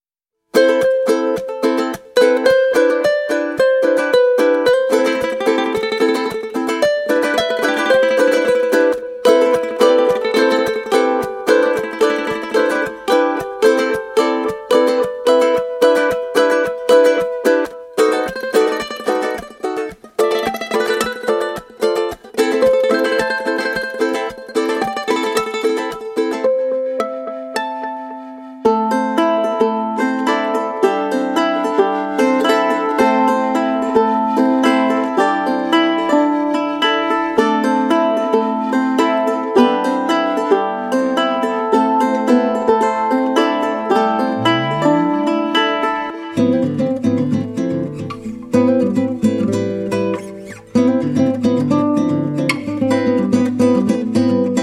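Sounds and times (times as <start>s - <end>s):
guitars: 0.5s - 27.8s, 29.6s - 54.6s.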